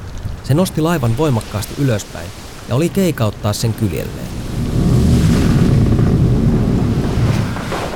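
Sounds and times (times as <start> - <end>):
hurricane storm wind roaring: 0.0 - 7.9
speech: 0.5 - 4.6
thunder rumbling: 3.4 - 7.9.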